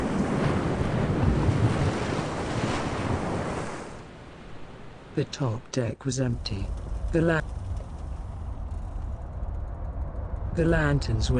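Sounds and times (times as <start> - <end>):
ocean waves crashing against a ship's hull: 0.0 - 4.7
gusting wind rushing over the water: 0.0 - 5.2, 6.0 - 11.3
speech: 5.2 - 7.6, 10.6 - 11.3.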